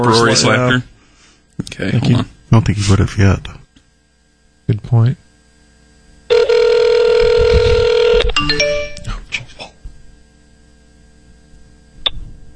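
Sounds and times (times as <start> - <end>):
speech: 0.0 - 0.9, 1.6 - 3.6, 4.7 - 5.2
electronic telephone ring tone on an outgoing call: 6.3 - 9.0.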